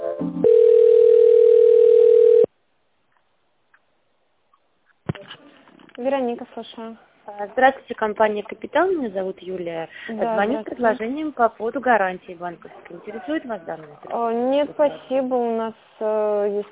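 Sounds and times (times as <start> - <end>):
telephone line electronic melody while a call is transferred: 0.3 - 2.5
speech: 6.6 - 16.6.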